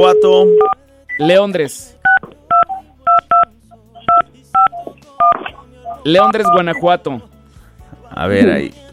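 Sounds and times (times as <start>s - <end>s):
touch-tone telephone keypad beeps as a number is dialed: 0.0s - 1.3s, 2.1s - 6.9s
speech: 0.1s - 2.0s, 6.0s - 7.3s, 8.1s - 8.9s.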